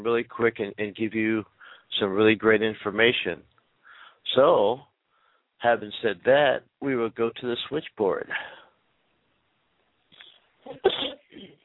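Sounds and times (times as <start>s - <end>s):
speech: 0.0s - 3.5s, 4.3s - 4.9s, 5.6s - 8.6s, 10.7s - 11.6s
person sneezing: 10.7s - 11.6s.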